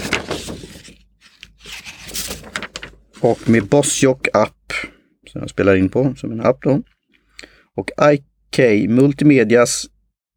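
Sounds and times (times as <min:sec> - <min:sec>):
crinkly rustling of paper sheets being handled: 0:00.0 - 0:04.0
speech: 0:03.2 - 0:04.6, 0:05.3 - 0:07.0, 0:07.8 - 0:09.9.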